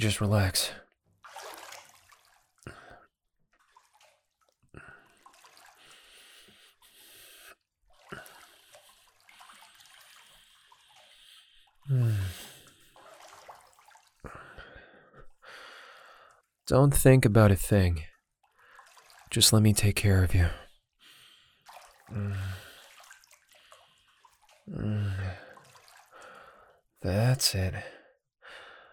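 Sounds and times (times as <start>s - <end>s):
speech: 0.0s - 0.8s, 11.9s - 12.4s, 16.7s - 18.1s, 19.3s - 20.6s, 22.1s - 22.6s, 24.7s - 25.4s, 27.0s - 28.0s
running water splashing while someone's hair is washed: 1.2s - 2.9s, 3.5s - 14.3s, 18.5s - 19.6s, 21.2s - 26.6s.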